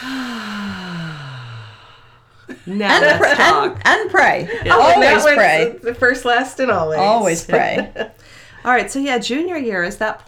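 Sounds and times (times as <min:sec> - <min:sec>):
person exhaling deeply like a sigh: 0:00.0 - 0:02.5
laughter: 0:02.5 - 0:05.9, 0:06.7 - 0:08.2
speech: 0:02.6 - 0:10.2.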